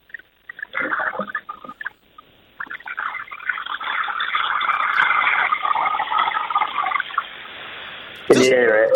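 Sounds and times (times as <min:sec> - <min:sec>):
water splashing and sloshing over a muffled phone line: 0:00.0 - 0:07.4
voices: 0:08.2 - 0:08.9.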